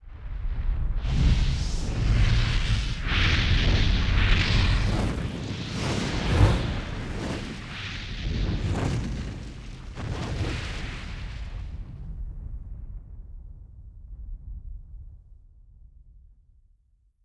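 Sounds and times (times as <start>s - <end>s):
fire crackling: 1.0s - 12.5s.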